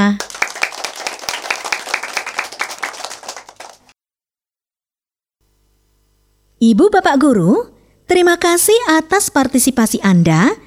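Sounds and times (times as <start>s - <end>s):
speech: 0.0s - 0.2s, 6.6s - 10.6s
many hands clapping applause: 0.0s - 4.0s.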